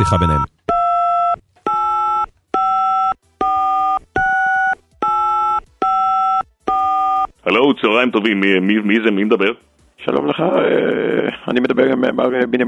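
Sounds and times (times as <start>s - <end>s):
speech: 0.0s - 0.5s, 7.4s - 12.6s
telephone dialing tones: 0.0s - 7.3s.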